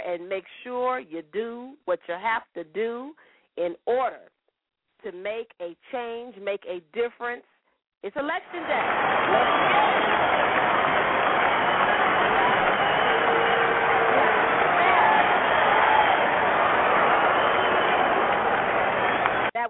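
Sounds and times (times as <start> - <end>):
speech: 0.2 - 4.4, 5.0 - 10.4
crowd applauding and clapping hands: 8.5 - 19.6.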